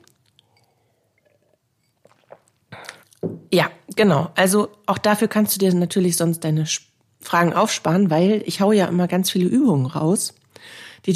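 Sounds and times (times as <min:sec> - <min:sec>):
person sipping water: 0:00.0 - 0:03.2
gulping and swallowing water: 0:01.2 - 0:03.2
speech: 0:03.5 - 0:11.1.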